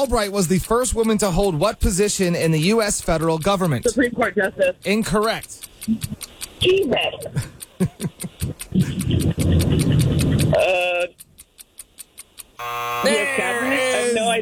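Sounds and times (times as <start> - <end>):
speech: 0.0 - 11.2, 12.6 - 14.4
rapid steady clock-like ticking of a game show: 0.0 - 14.4
laughter: 5.9 - 10.8
long brassy buzzing tone with wavering notes: 12.6 - 14.2
loud harsh electronic game show buzzer: 12.6 - 14.4.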